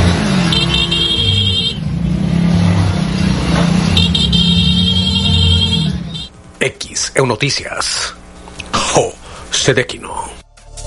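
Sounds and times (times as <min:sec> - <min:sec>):
sustained horn blasts: 0:00.0 - 0:02.0, 0:03.6 - 0:06.3
motorcycle funeral procession engines droning and revving in Veracruz Mexico: 0:00.0 - 0:06.3
speech: 0:07.2 - 0:08.2, 0:09.0 - 0:10.4.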